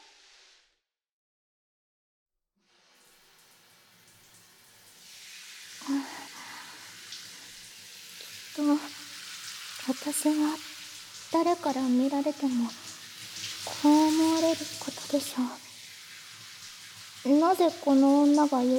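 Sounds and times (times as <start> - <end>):
shower water spraying: 2.6 - 18.7
speech: 9.9 - 10.7, 11.3 - 12.9, 13.8 - 15.6, 17.2 - 18.7.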